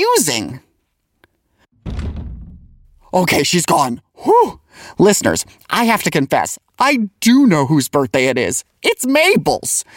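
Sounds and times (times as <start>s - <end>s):
speech: 0.0s - 0.7s, 3.1s - 9.9s
sound booth push door closing with heavy thud: 1.8s - 3.1s.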